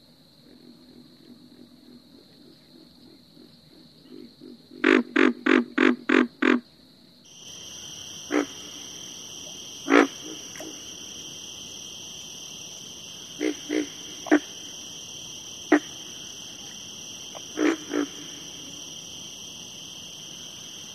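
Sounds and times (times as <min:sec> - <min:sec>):
high-pitched insect hum: 0:00.0 - 0:20.9
pig frog Rana grylio grunting: 0:08.2 - 0:08.8, 0:09.4 - 0:11.0, 0:13.3 - 0:14.8, 0:15.6 - 0:18.9.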